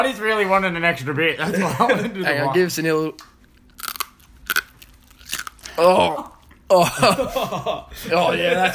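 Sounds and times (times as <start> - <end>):
speech: 0.0 - 3.3, 5.8 - 8.7
crunchy food being bitten and chewed: 3.5 - 6.6
laughter: 6.7 - 8.7.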